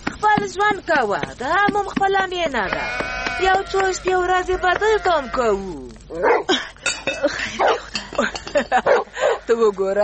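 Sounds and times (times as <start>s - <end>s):
speech: 0.5s - 10.0s
dog barking beside a tent at the foot of a mountain: 6.2s - 6.5s, 7.6s - 7.9s, 8.8s - 9.4s.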